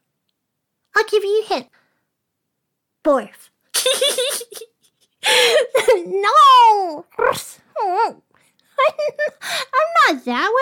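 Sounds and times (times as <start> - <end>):
speech: 1.0 - 1.8, 3.0 - 10.6
person in a Halloween dog costume imitating dog barks: 6.2 - 8.2.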